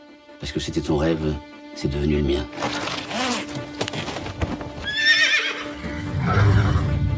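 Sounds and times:
speech: 0.4s - 2.8s
horse high quavering whinny: 4.8s - 7.0s.

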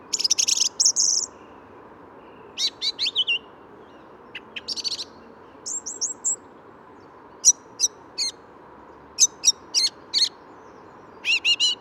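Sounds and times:
soft traffic hum from a nearby road: 0.0s - 11.7s
song thrush singing at the edge of the Bois de Vincennes: 0.0s - 11.7s.

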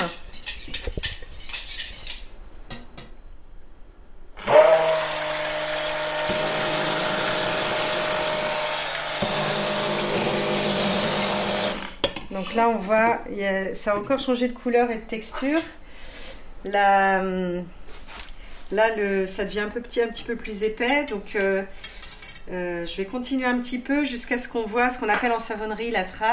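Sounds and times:
immersion blender whirring as it mixes thick soap batter: 4.4s - 12.0s
speech: 12.4s - 15.8s, 16.6s - 17.8s, 18.7s - 21.8s, 22.5s - 26.3s
clinks and handling sounds: 20.2s - 22.5s.

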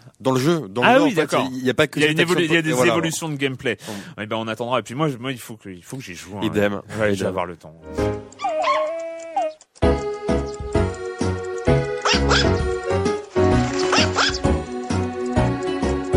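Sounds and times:
speech: 0.2s - 8.4s
steady beat-driven music track: 7.8s - 16.1s
virtual dog in a Nintendo 3DS video game barking and yipping: 8.4s - 9.6s, 12.0s - 12.6s, 13.9s - 14.4s.

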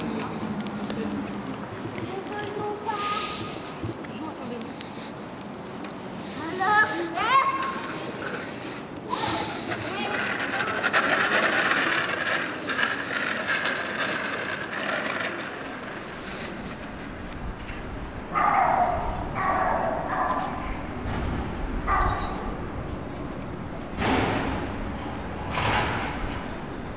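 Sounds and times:
children chattering and calling out while playing and riding bicycles in a park: 0.0s - 26.9s
children shrieking: 16.1s - 23.5s
dog barking outdoors: 18.3s - 22.8s.

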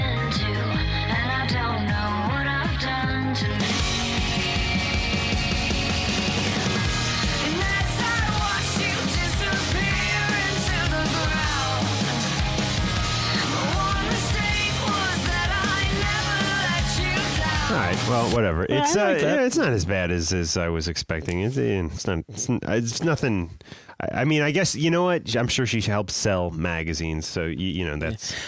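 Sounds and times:
sung vocal line over driving drums: 0.0s - 12.0s, 13.1s - 19.4s
driving drums: 3.4s - 18.4s
loud dense full-band song from a new album: 3.4s - 18.4s
speech: 18.4s - 28.4s.

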